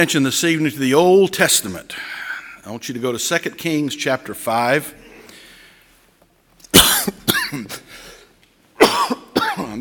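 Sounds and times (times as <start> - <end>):
speech: 0.0 - 5.0, 7.5 - 7.8
person coughing: 6.8 - 7.9, 8.8 - 9.7.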